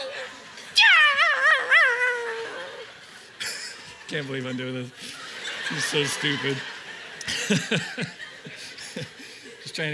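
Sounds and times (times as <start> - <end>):
voice imitating a yelping chihuahua: 0.0 - 2.9
laughter: 0.0 - 9.9
speech: 4.1 - 6.7, 7.5 - 9.1, 9.8 - 9.9.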